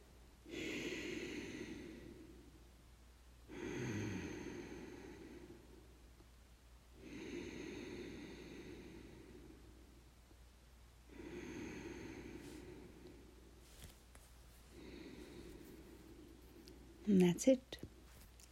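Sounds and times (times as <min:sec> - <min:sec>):
slow quiet ujjayi breathing on the inhale: 0:00.4 - 0:02.7, 0:03.5 - 0:06.1, 0:07.0 - 0:10.1, 0:11.0 - 0:13.9, 0:14.6 - 0:17.0
speech: 0:17.1 - 0:17.9.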